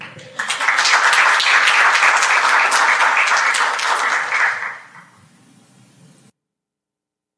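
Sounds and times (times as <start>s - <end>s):
crowd applauding: 0.0s - 5.2s.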